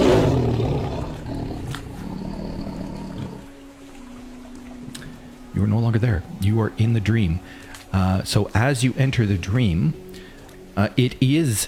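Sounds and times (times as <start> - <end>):
deep growling roar: 0.0 - 3.6
speech: 5.6 - 10.0, 10.8 - 11.6.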